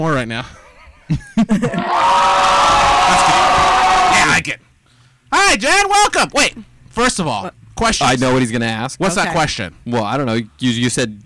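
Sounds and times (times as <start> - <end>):
speech: 0.0 - 3.3, 5.3 - 11.2
laughter: 0.5 - 2.1
audience applause and cheering: 1.7 - 4.4
people shouting: 1.7 - 4.4.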